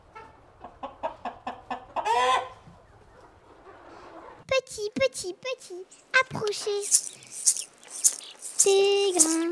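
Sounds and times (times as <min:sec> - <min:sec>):
hen clucking in a farmyard: 0:00.1 - 0:04.4, 0:06.4 - 0:09.5
speech: 0:05.7 - 0:07.2, 0:08.6 - 0:09.5.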